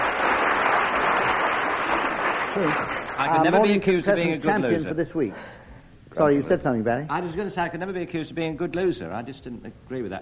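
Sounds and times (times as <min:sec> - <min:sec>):
audience applause: 0:00.0 - 0:03.6
speech: 0:02.6 - 0:10.1.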